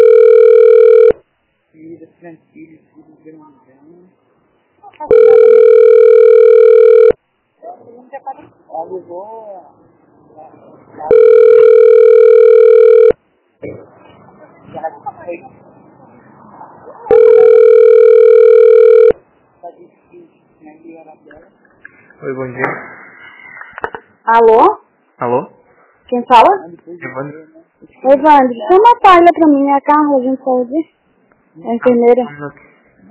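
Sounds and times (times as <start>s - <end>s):
telephone ringing in long steady electronic tones: 0.0s - 1.2s, 5.1s - 7.2s, 11.1s - 13.2s, 17.1s - 19.2s
speech: 24.3s - 24.8s, 26.3s - 31.0s, 31.6s - 32.6s.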